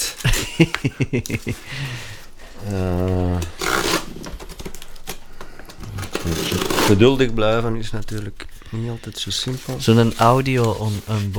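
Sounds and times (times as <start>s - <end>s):
laughter: 0.0s - 4.3s
crinkly rustling during an unboxing: 0.0s - 11.3s
speech: 0.6s - 3.6s, 6.9s - 11.3s
person humming: 1.4s - 10.5s
black gaffer tape on a package sliced and torn open: 2.4s - 7.0s.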